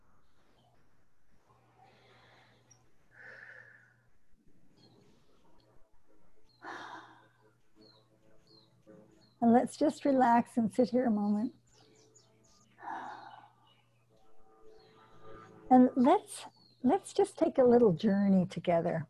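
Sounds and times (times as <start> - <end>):
breathing in through nose, out through pursed lips: 0.1 - 5.6, 6.5 - 7.4, 12.7 - 13.9
speech: 9.5 - 11.6, 15.7 - 19.0.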